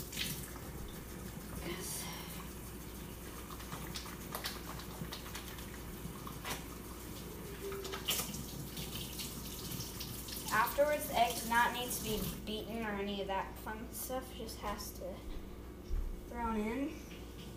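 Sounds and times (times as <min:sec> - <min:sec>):
running tap water as hands are washed: 0:00.0 - 0:12.8
speech: 0:10.8 - 0:15.4, 0:16.3 - 0:17.0.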